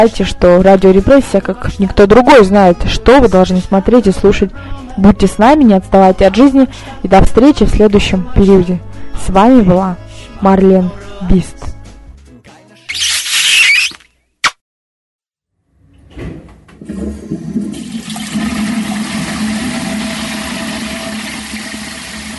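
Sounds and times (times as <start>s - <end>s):
speech: 0.0s - 11.7s
swirling toilet flush water rushing: 16.8s - 22.3s.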